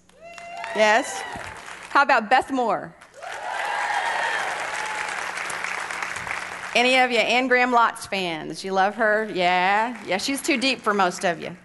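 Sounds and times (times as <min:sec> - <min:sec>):
audience of Bible study attendees applauding: 0:00.2 - 0:02.0, 0:03.2 - 0:06.8
speech: 0:00.8 - 0:01.4, 0:02.0 - 0:03.0, 0:06.8 - 0:11.6.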